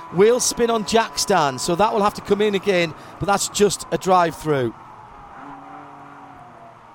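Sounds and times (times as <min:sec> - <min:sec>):
race car engine roaring past on a track: 0:00.0 - 0:06.9
speech: 0:00.1 - 0:04.8.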